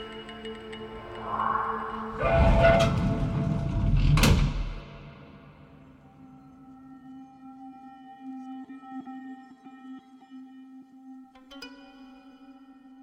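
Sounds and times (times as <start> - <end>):
subway train doors sliding shut on a silver-coloured carriage: 2.2 - 5.3.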